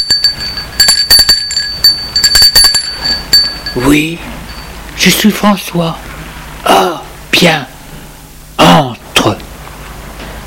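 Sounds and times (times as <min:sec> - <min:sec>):
bell rung at a garden gate: 0:00.0 - 0:04.9
speech: 0:03.7 - 0:04.4, 0:05.0 - 0:07.7.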